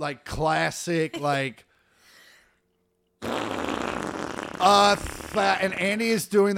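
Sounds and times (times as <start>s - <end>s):
speech: 0.0s - 1.7s, 4.6s - 6.5s
vocal imitation of a fart: 3.2s - 5.8s.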